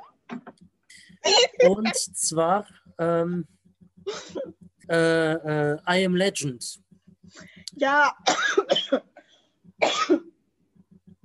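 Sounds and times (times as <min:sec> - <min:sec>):
speech: 0:01.0 - 0:09.1, 0:09.8 - 0:10.3
person coughing: 0:01.2 - 0:02.0, 0:08.2 - 0:09.2, 0:09.8 - 0:10.3.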